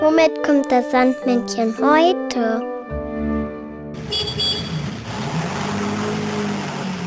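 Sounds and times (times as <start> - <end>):
speech: 0.2 - 2.7
brief buzzy horn-like tone: 4.0 - 4.8
car driving past with engine rumble and road noise: 4.0 - 7.0.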